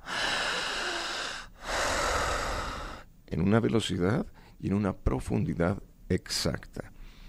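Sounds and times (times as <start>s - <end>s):
patient deep breathing: 0.0s - 3.2s, 7.0s - 7.2s
speech: 3.3s - 7.0s.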